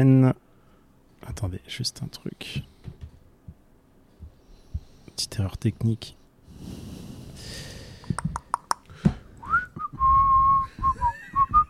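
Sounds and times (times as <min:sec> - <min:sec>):
speech: 0:00.0 - 0:00.4, 0:01.2 - 0:03.0, 0:05.2 - 0:06.8
soft breathy noise: 0:02.2 - 0:09.4
person whistling: 0:09.4 - 0:11.6.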